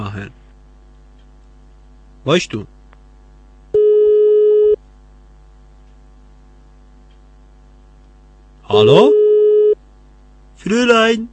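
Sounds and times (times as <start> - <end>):
speech: 0.0 - 0.4, 2.2 - 2.7, 8.7 - 9.2, 10.6 - 11.3
low hum: 0.0 - 11.3
telephone line tone on a call being placed: 3.7 - 4.8, 8.7 - 9.8.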